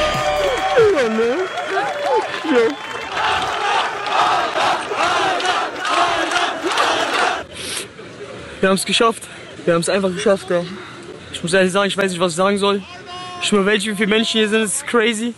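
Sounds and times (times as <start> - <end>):
fans whooping at a runner reaching the finish line: 0.0 - 4.5
crowd of fans roaring and applauding a runner at the finish line: 0.0 - 7.5
speech: 1.0 - 1.6, 2.2 - 3.4, 8.6 - 15.3.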